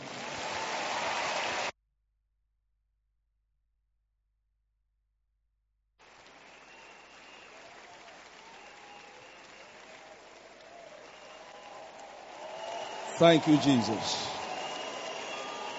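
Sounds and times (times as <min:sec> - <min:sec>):
large crowd applauding: 0:00.0 - 0:01.7, 0:06.0 - 0:15.7
speech: 0:13.2 - 0:14.4.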